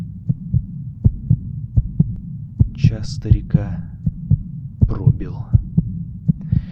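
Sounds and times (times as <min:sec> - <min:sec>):
dull hum: 0:00.0 - 0:06.7
loud low heartbeat thumps: 0:00.0 - 0:06.7
speech: 0:02.9 - 0:04.0, 0:04.9 - 0:05.6.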